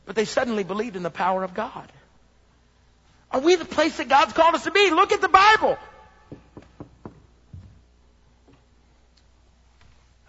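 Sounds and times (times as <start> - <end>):
speech: 0.1 - 2.0, 3.3 - 6.4
quick evenly spaced knocks on a door: 6.3 - 7.7
faint taps: 6.3 - 7.8.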